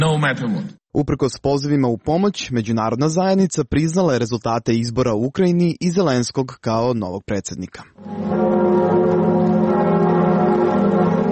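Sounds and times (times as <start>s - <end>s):
speech: 0.0s - 9.0s
large cathedral church bells ringing: 8.0s - 11.2s.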